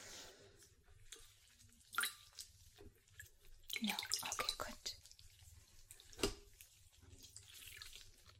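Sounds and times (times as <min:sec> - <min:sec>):
water splashing as a face is washed during a facial skincare treatment: 0:01.1 - 0:08.3.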